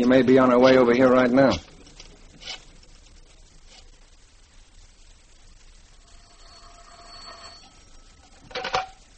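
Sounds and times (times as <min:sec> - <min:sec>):
speech: 0:00.0 - 0:01.7
faint hiss: 0:00.0 - 0:09.1
telephone ringing: 0:06.0 - 0:08.7.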